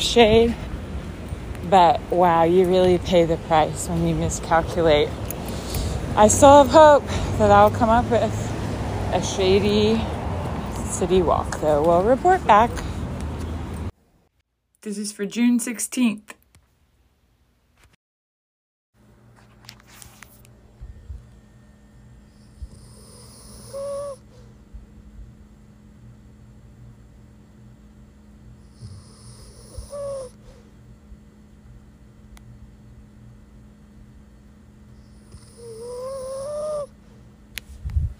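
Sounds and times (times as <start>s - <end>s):
speech: 0.0s - 0.6s, 1.6s - 5.2s, 6.2s - 8.4s, 9.1s - 10.2s, 11.0s - 12.9s, 14.8s - 16.4s
low steady hum: 0.0s - 14.2s, 19.0s - 38.1s
sleeping dog snoring softly: 22.3s - 24.4s, 28.6s - 30.6s, 35.0s - 36.9s.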